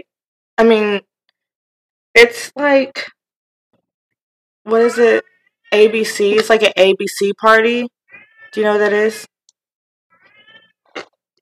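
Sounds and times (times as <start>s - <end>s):
speech: 0.6s - 1.1s, 2.2s - 3.2s, 4.7s - 9.3s
cat meowing: 8.1s - 8.6s, 10.1s - 10.8s.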